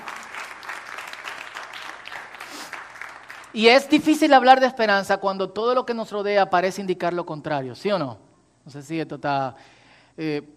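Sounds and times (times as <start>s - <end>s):
audience applauding: 0.0s - 3.6s
speech: 3.6s - 10.5s.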